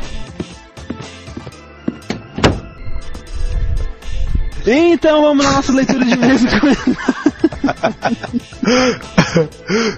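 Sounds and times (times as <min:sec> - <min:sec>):
door shutting with a thud: 0:02.0 - 0:02.8
speech: 0:04.7 - 0:09.9
laughter: 0:05.6 - 0:09.9.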